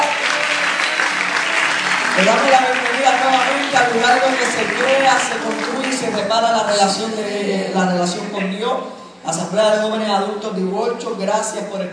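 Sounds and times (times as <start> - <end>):
dense audience applause: 0.0 - 7.0
speech: 2.2 - 11.9.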